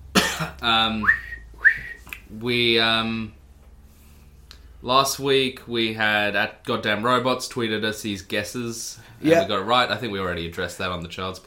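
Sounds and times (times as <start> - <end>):
speech: 0.4 - 1.4, 2.3 - 3.4, 4.8 - 11.4
person trying to whistle with breathy puffs and squeaky chirps: 1.0 - 2.2.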